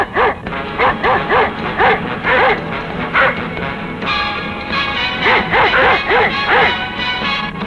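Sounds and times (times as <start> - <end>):
dog barking: 0.0 - 3.5, 5.0 - 7.0
steady hum: 0.0 - 7.6.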